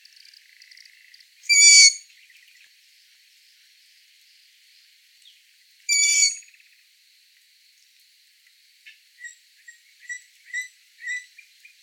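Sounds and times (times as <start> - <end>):
Long-eared Owl Asio otus squealing call: 1.5 - 2.0, 5.9 - 6.4
Long-eared Owl short chirps: 5.9 - 6.4.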